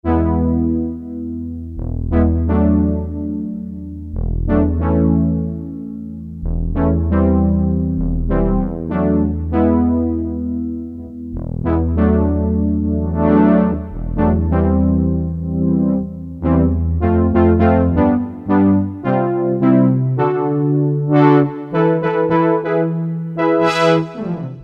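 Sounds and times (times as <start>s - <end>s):
synthesizer brass tone: 0.0s - 24.6s.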